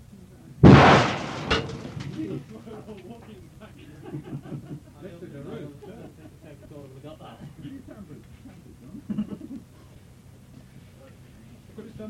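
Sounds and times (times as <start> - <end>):
half a stick of dynamite exploding: 0.6 - 2.3
people talking and chuckling quietly: 2.0 - 11.3.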